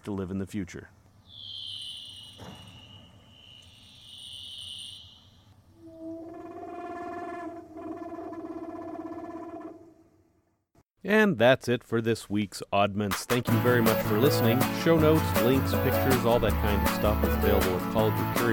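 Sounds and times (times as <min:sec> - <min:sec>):
speech: 0:00.0 - 0:01.0, 0:11.0 - 0:18.5
leopard seals calling underwater beneath the ice: 0:05.8 - 0:09.9.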